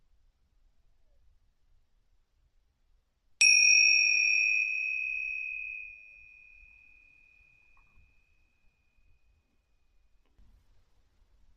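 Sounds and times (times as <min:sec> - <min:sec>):
bell chime marking end of breathing meditation: 0:03.4 - 0:08.3.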